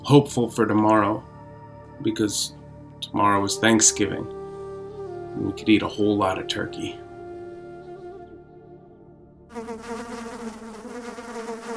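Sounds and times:
speech: 0.1 - 1.3, 2.0 - 4.4, 5.3 - 7.0
insects buzzing in a droning harmonic hum: 9.5 - 11.7.

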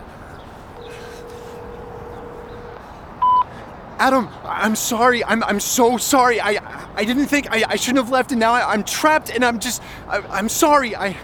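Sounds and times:
phone ring tone on the other end of a call: 0.8 - 3.5
sudden loud clear beep: 0.8 - 3.5
speech: 4.0 - 11.2.

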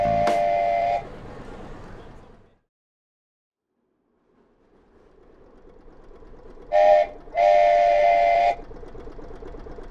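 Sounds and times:
tourist train whistle blowing: 0.0 - 1.1, 6.7 - 8.6
small tourist train chugging through Central Park: 0.0 - 2.5, 4.4 - 9.8.

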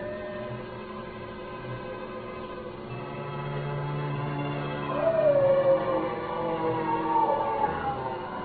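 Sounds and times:
steady low drone: 0.0 - 8.4
large dog howling in long wavering cries: 4.9 - 8.4.

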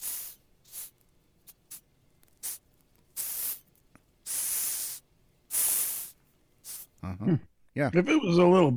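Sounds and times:
Madagascar hissing cockroach hissing: 0.0 - 1.8, 2.4 - 6.9
speech: 7.0 - 8.7.

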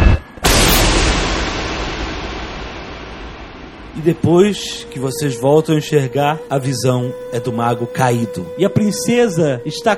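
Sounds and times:
magical spell explosion: 0.0 - 5.6
speech: 4.0 - 9.9.

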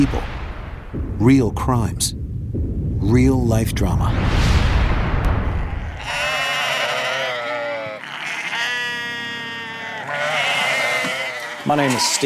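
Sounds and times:
speech: 0.0 - 2.2, 3.0 - 4.4, 11.6 - 12.2
low rumble: 0.0 - 7.1
sheep bleating on a small farm: 5.9 - 12.2.

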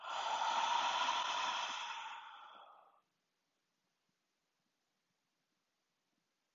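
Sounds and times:
slow breathing in and out during a guided meditation: 0.0 - 3.0.

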